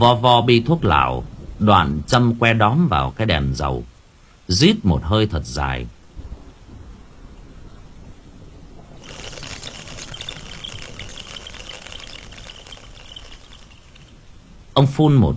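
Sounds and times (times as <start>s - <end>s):
speech: 0.0s - 3.9s, 4.5s - 6.0s, 14.8s - 15.3s
low rumble of thunder: 0.8s - 2.6s, 6.0s - 14.7s
heavy storm rain hissing: 6.1s - 14.7s.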